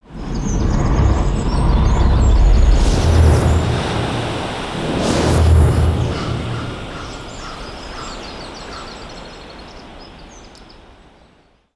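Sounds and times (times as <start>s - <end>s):
ambience: 0.0s - 8.6s.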